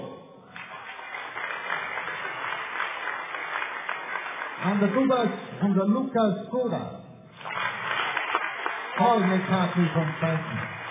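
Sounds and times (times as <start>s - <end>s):
audience applause: 0.5s - 5.3s, 7.4s - 10.8s
speech: 4.6s - 7.0s, 9.0s - 10.8s.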